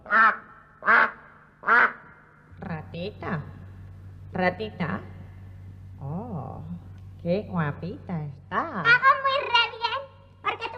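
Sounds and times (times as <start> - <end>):
duck quacking: 0.0 - 2.2
speech: 3.0 - 3.6, 4.3 - 5.1, 7.2 - 9.2.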